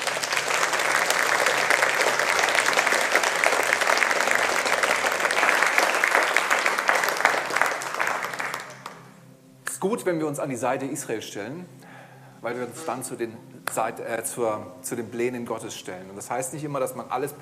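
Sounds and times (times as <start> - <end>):
audience applauding: 0.0 - 9.2
speech: 9.8 - 11.8, 12.4 - 17.4.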